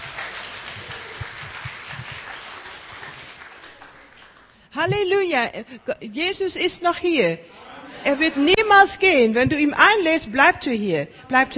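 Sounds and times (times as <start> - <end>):
crowd in Berlin applauding: 0.0 - 4.7
speech: 4.8 - 11.5
laughter: 7.6 - 9.0.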